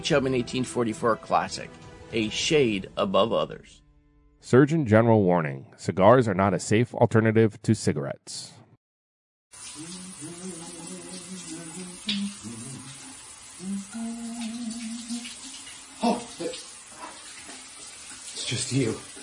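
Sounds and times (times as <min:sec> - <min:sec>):
speech: 0:00.0 - 0:03.8, 0:04.4 - 0:08.6, 0:18.5 - 0:19.1
shower water running: 0:09.5 - 0:19.2.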